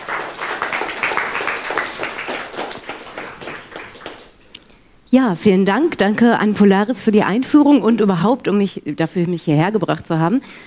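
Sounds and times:
audience applause: 0.0 - 4.4
speech: 5.1 - 10.6.

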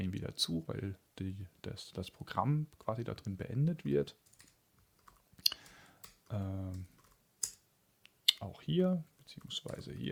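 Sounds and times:
speech: 0.1 - 4.4, 6.3 - 6.9, 8.4 - 10.1
keystrokes on a computer keyboard typing a tmux exit command: 4.2 - 7.6.

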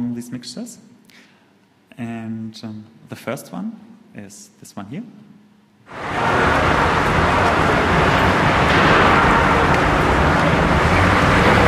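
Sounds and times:
speech: 0.2 - 1.3, 2.0 - 5.3
road traffic roar: 5.9 - 11.6.

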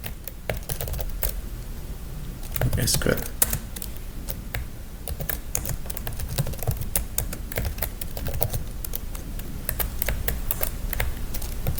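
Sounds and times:
typing an SQL query on a computer keyboard: 0.0 - 1.4, 3.4 - 11.7
steady low hum: 1.8 - 5.2
speech: 2.7 - 3.4.

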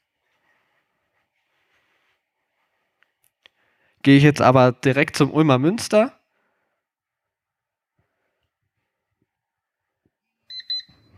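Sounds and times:
speech: 4.0 - 6.2
phone alarm-clock app beeps: 10.5 - 11.1.

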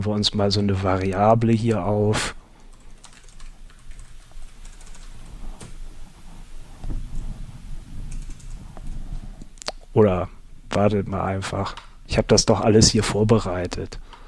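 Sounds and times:
speech: 0.0 - 2.4, 10.0 - 14.2
typing on a computer keyboard while programming: 2.6 - 5.8, 8.0 - 9.0.

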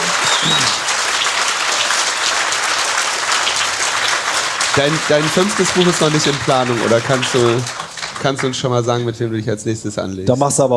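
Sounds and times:
audience applause: 0.0 - 9.2
speech: 4.8 - 10.7.

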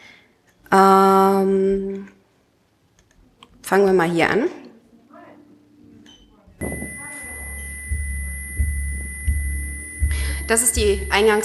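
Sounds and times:
speech: 0.7 - 1.0, 3.7 - 4.6, 10.5 - 11.4
low hum: 6.6 - 11.4
soft rhythmic thumps: 6.6 - 11.4
steady high electronic stress-test calibration beep tone: 6.6 - 11.4.

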